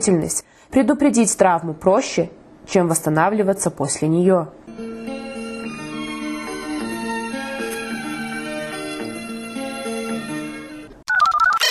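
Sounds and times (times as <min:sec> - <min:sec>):
speech: 0:00.0 - 0:05.0
electronic phone ringtone melody after dialing a number: 0:04.7 - 0:11.7.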